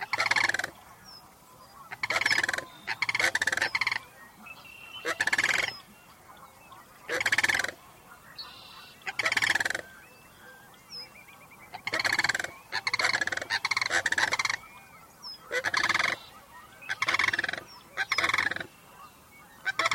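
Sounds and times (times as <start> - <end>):
sandhill cranes calling in the Sacramento region: 0.0 - 19.9.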